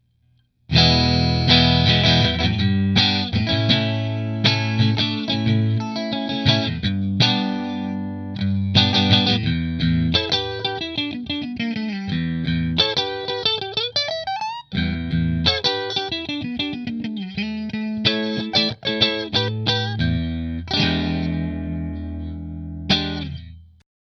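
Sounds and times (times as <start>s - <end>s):
electric guitar: 0.7s - 23.6s.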